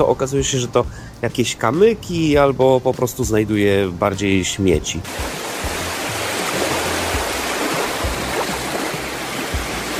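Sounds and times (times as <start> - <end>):
speech: 0.0 - 5.4
sea waves washing onto the shore: 5.0 - 9.9.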